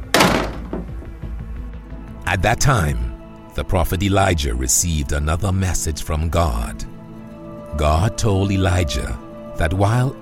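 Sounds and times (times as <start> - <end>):
door slamming shut: 0.0 - 1.1
speech: 2.3 - 6.9, 7.8 - 10.1.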